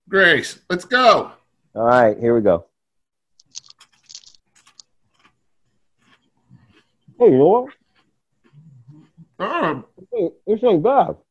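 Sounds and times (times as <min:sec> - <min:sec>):
speech: 0:00.1 - 0:02.7, 0:07.2 - 0:07.8, 0:09.4 - 0:11.2
crunchy food being chewed: 0:03.4 - 0:09.5
moist mouth sounds: 0:05.0 - 0:10.1.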